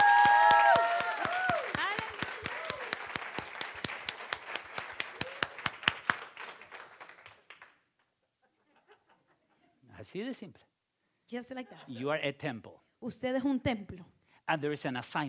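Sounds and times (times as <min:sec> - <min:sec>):
large crowd applauding loudly: 0:00.0 - 0:07.9
speech: 0:10.1 - 0:10.7, 0:11.3 - 0:15.2.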